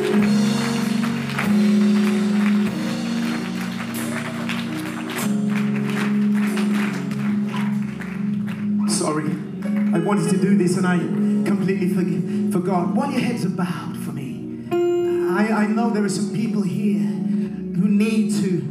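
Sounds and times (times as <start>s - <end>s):
audience clapping in praise: 0.0s - 11.4s
sustained organ chords: 0.0s - 18.6s
speech: 10.1s - 13.8s, 15.5s - 17.2s.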